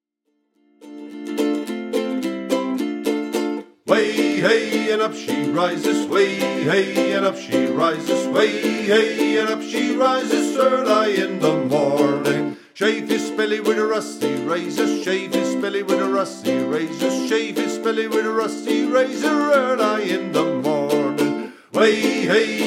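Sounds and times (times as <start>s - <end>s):
ukulele: 0.4s - 22.6s
person singing: 3.9s - 22.6s.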